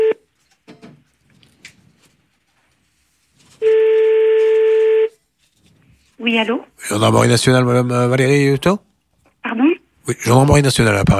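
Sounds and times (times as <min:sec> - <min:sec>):
telephone ringing during a radio call-in prank: 0:03.6 - 0:05.2
speech: 0:06.3 - 0:08.9, 0:09.6 - 0:11.1.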